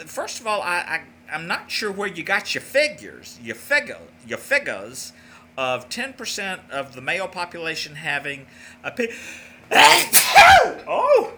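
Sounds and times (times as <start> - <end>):
speech: 0.0 - 11.3
person sneezing: 9.7 - 10.8.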